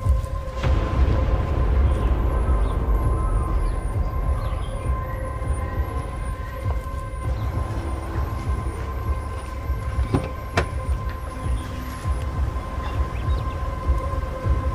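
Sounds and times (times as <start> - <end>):
car engine rumbling as the vehicle pulls up and stops: 0.1 - 14.7.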